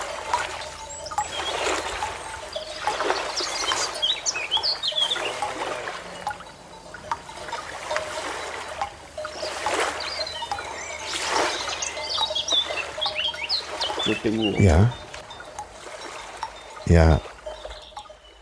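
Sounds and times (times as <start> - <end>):
birds chirping and calling outdoors: 0.0 - 18.4
speech: 14.2 - 15.0, 16.9 - 17.3.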